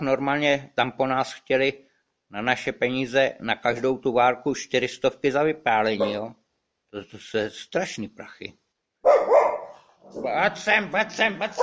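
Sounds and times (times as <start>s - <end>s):
speech: 0.0s - 9.3s, 10.1s - 11.6s
guard dog barking: 6.0s - 6.2s, 9.0s - 10.0s.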